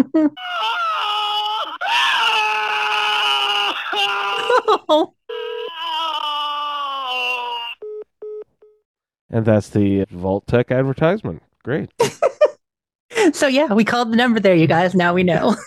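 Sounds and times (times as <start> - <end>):
speech: 0.0 - 0.8, 4.6 - 5.2, 9.3 - 12.4, 13.2 - 15.6
man screaming and yelling through a phone line: 0.4 - 4.7, 5.3 - 7.8.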